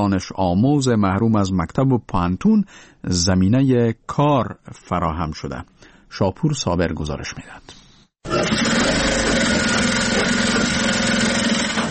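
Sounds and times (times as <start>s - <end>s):
speech: 0.0s - 9.0s
electric sewing machines running: 8.3s - 11.8s.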